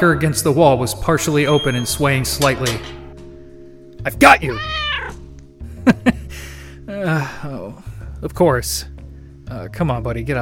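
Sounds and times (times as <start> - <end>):
speech: 0.0 - 3.0, 4.0 - 4.8, 6.9 - 8.9, 9.5 - 10.4
cat meowing: 4.4 - 5.2.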